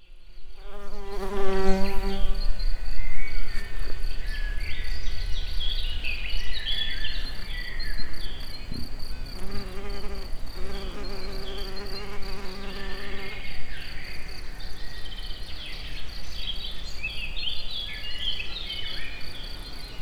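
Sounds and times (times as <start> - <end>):
insects in nature: 0.0 - 20.0.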